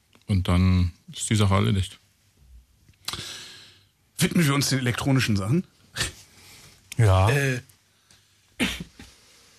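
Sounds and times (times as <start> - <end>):
speech: 0.3 - 2.0, 4.2 - 6.1, 7.0 - 7.7
person coughing: 8.6 - 9.1.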